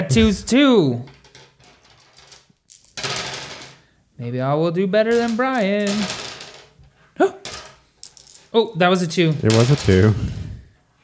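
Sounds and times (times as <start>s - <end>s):
speech: 0.1s - 1.2s, 4.2s - 6.2s, 8.5s - 10.4s
dice rattling and tumbling across a hard surface in a game: 1.1s - 3.8s, 5.1s - 6.8s, 7.4s - 8.6s, 9.2s - 10.1s.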